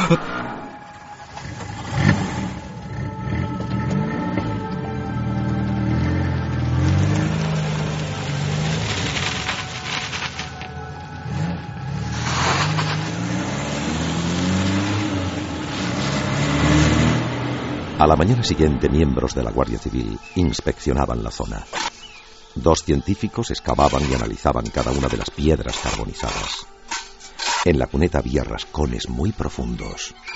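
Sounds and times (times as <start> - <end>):
speech: 0.1 - 0.4, 18.1 - 21.8, 22.6 - 27.0, 27.6 - 30.3
old truck engine cranking and revving: 1.0 - 20.0.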